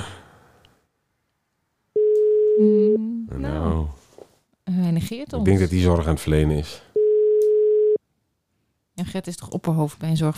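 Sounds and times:
telephone ringing tone while calling: 2.0 - 2.6, 7.0 - 8.0
speech: 2.6 - 4.0, 5.0 - 6.9, 9.0 - 10.3.

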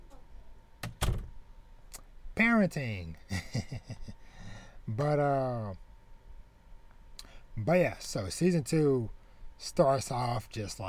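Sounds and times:
door swinging shut with a solid thunk: 0.8 - 1.4
speech: 2.4 - 4.2, 4.9 - 5.8, 7.6 - 10.8.

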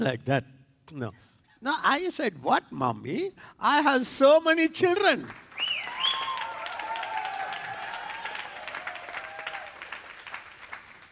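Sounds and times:
speech: 0.0 - 6.0
crowd applauding: 5.3 - 11.0.

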